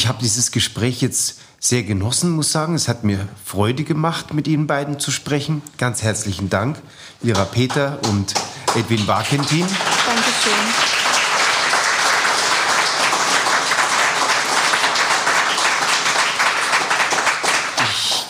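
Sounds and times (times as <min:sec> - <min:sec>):
speech: 0:00.1 - 0:10.9
audience applause at end of talk: 0:07.4 - 0:18.2.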